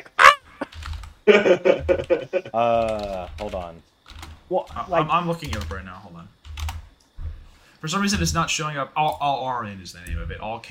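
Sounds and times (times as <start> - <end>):
voice imitating a honking bird call with nasal squawk: 0.0 - 0.7
laughter: 0.0 - 3.1
speech: 1.3 - 3.9, 4.5 - 6.4, 7.8 - 10.6.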